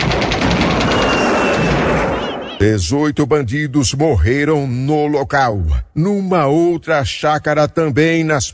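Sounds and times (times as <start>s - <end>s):
rapid gunfire bursts: 0.0s - 2.6s
speech: 2.6s - 8.5s.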